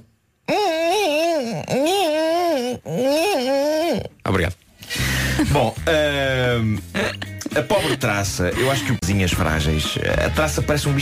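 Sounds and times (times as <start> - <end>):
person vocally imitating a mosquito opening a creaking door: 0.5 - 4.2
speech: 1.7 - 2.1, 4.0 - 4.6, 5.5 - 11.0.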